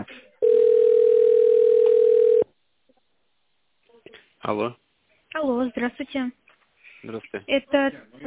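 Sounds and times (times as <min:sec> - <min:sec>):
single long steady telephone ringback tone during office call transfer: 0:00.4 - 0:02.4
speech: 0:04.5 - 0:04.8, 0:05.6 - 0:06.4, 0:07.0 - 0:08.2.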